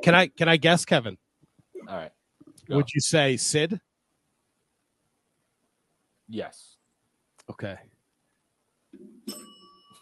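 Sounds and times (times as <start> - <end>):
speech: 0.0 - 1.2, 1.8 - 3.9, 6.3 - 6.7, 7.5 - 7.9, 9.3 - 9.5
single bell ringing with bright sustained metallic tone: 9.3 - 9.9.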